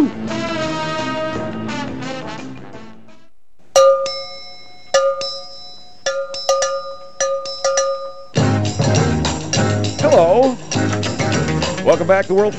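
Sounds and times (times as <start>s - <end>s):
radio bumper instrumental band music: 0.0s - 3.2s, 8.4s - 12.5s
bright ringing cowbell-like strikes: 3.8s - 10.3s
speech: 12.0s - 12.5s.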